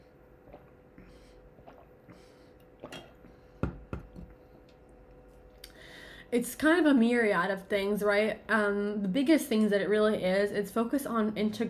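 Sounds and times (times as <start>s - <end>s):
sipping of coffee or water from a cup: 0.4s - 3.4s
gulping swallows: 1.5s - 3.4s
speech: 6.3s - 11.6s.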